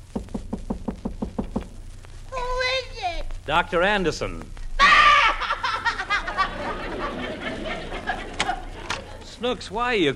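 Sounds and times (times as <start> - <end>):
knocking on a door: 0.1 - 1.8
speech: 3.5 - 4.6, 9.4 - 10.1
laughter: 4.8 - 9.4.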